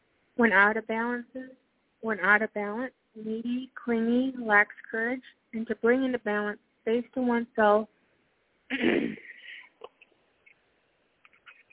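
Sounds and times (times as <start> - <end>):
speech: 0.4 - 8.0, 8.7 - 9.3
fairly loud raspy throat clearing: 8.7 - 9.7.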